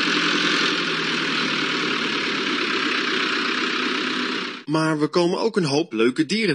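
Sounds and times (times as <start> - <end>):
milk truck heavy engine driving past: 0.0 - 4.7
speech: 4.7 - 6.5.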